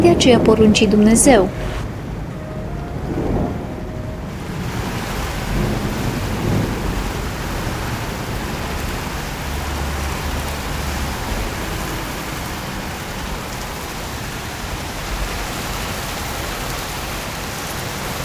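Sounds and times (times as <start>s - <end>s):
speech: 0.0s - 1.8s
heavy steady rain pouring in a storm: 0.0s - 18.2s.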